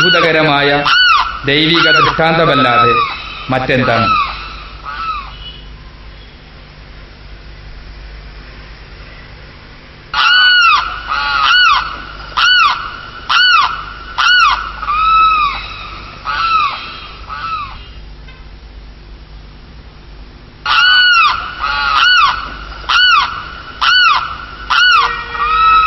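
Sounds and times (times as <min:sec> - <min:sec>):
speech: 0:00.0 - 0:04.2
birds honking in flight: 0:00.0 - 0:05.6, 0:10.2 - 0:18.0, 0:20.6 - 0:25.8.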